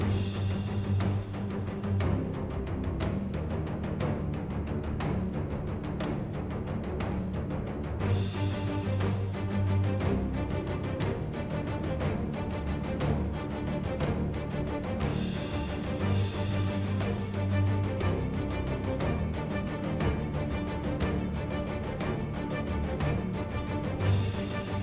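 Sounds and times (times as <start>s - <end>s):
action RPG game music loop: 0.0s - 24.8s.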